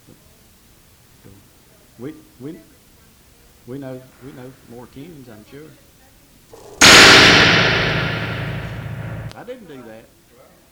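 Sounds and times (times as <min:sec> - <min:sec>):
speech: 0:01.2 - 0:02.8, 0:03.6 - 0:05.9, 0:06.5 - 0:08.2, 0:09.4 - 0:10.2
gong struck: 0:06.8 - 0:09.3.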